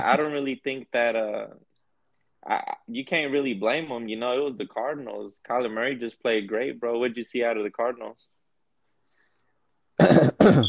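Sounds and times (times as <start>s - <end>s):
speech: 0.0s - 1.7s, 2.4s - 8.3s, 10.0s - 10.6s
person coughing: 10.0s - 10.6s.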